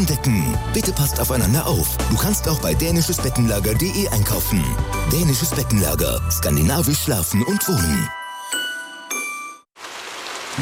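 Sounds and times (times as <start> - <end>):
speech: 0.0 - 8.2
bright ringing chime tones: 7.4 - 9.7
dense hiss of falling rain: 9.8 - 10.5.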